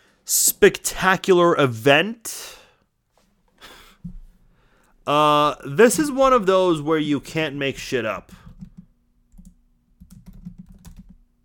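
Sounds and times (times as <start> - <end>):
speech: 0.3 - 2.6, 5.0 - 8.4
faint low hum: 2.6 - 11.4
typing on a computer keyboard: 8.3 - 11.2.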